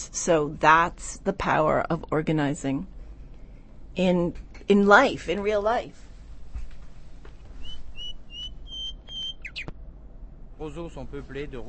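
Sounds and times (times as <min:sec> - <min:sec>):
steady low hum: 0:00.0 - 0:11.6
speech: 0:00.2 - 0:03.0, 0:04.0 - 0:06.0, 0:10.6 - 0:11.6
pet birds whistling and chirping: 0:07.6 - 0:09.7.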